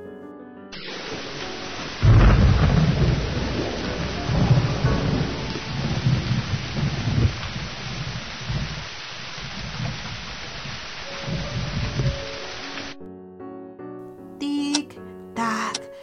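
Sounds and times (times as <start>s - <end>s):
thunder crack: 0.8s - 12.5s
heavy rain: 0.8s - 13.0s.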